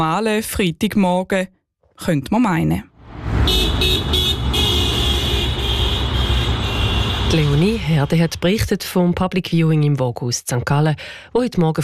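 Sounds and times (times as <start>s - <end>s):
speech: 0.0s - 4.2s, 7.3s - 11.8s
morning street traffic rumbling at a market square: 2.9s - 9.0s
car horns tooting and honking: 3.1s - 8.6s.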